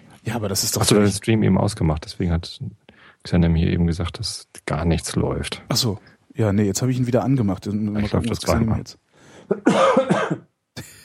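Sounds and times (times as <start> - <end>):
speech: 0.2 - 10.5
person clearing throat: 9.5 - 11.0.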